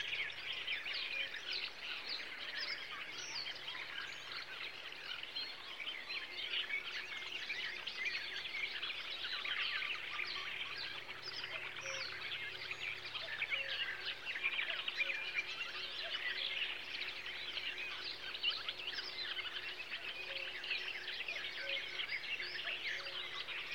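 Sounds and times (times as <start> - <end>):
birds in summer: 0.0 - 23.7.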